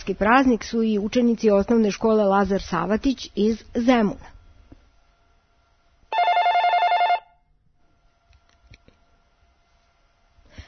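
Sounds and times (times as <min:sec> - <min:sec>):
speech: 0:00.0 - 0:04.3
quiet phone line noise: 0:06.1 - 0:07.4
telephone ringing with rapid trilling electronic ring: 0:06.1 - 0:07.4.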